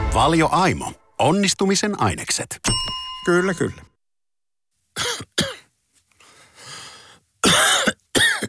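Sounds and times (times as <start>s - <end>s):
speech: 0.2s - 3.9s, 5.0s - 5.6s
person coughing sharply and harshly: 5.0s - 5.7s, 7.4s - 8.4s
raspy breath: 6.2s - 7.3s.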